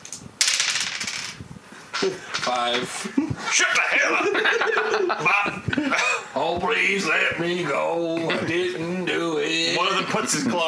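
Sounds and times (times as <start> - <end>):
two dice rolling across a hard surface: 0.0 - 1.4
speech: 2.0 - 10.6
laughter: 3.0 - 6.3, 9.6 - 10.6.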